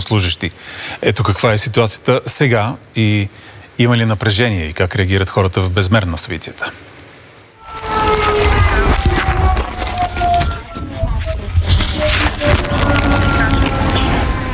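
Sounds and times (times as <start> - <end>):
speech: 0.1 - 6.8
air base sirens sounding: 7.6 - 14.5
constant rumble of outdoor noise: 7.6 - 14.5.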